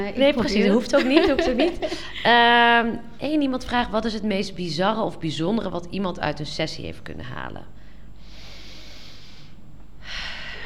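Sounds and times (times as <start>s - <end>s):
speech: 0.0s - 7.8s
laughter: 0.6s - 2.3s
long deep breath drawn in: 7.8s - 10.6s.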